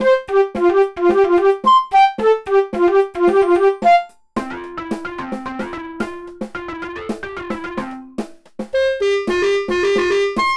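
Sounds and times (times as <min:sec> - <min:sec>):
long silly success fanfare: 0:00.0 - 0:08.1, 0:08.8 - 0:10.5.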